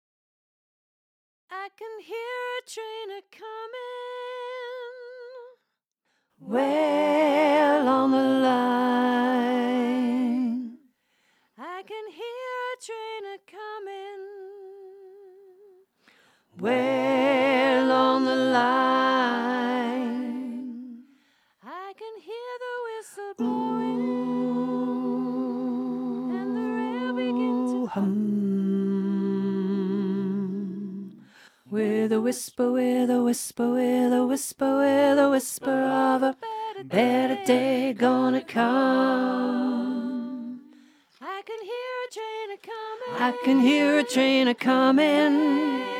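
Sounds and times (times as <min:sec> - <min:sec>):
tenor vocal learning track: 0:06.4 - 0:10.8, 0:16.5 - 0:21.2, 0:22.9 - 0:45.9.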